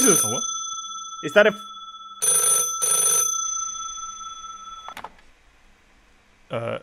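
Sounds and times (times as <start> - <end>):
speech: 0.0 - 0.5, 1.2 - 1.7, 6.5 - 6.8
telephone bell ringing: 0.0 - 5.0.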